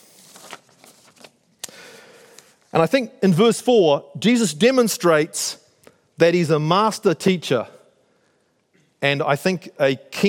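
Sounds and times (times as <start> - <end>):
two sheets of paper rustling: 0.0 - 1.5
speech: 2.8 - 5.6, 6.2 - 7.8, 9.0 - 10.2.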